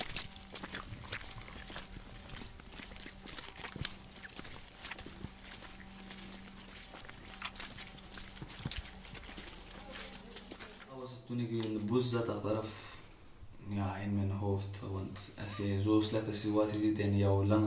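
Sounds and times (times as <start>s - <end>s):
footsteps squelching through wet mud at night: 0.0s - 12.7s
faint steady hum: 0.0s - 17.6s
speech: 11.3s - 12.8s, 13.7s - 17.6s.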